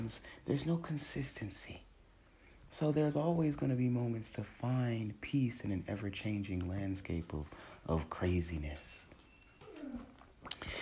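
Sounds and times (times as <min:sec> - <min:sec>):
speech: 0:00.0 - 0:01.9, 0:02.7 - 0:09.1
kitten playing and letting out a soft low cooing trill: 0:09.4 - 0:10.2.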